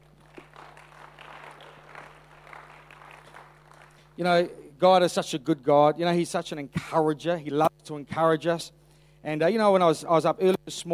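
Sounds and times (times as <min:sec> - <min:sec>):
audience clapping after a healing prayer: 0:00.0 - 0:04.2
low constant hum: 0:00.0 - 0:10.9
speech: 0:04.2 - 0:10.9.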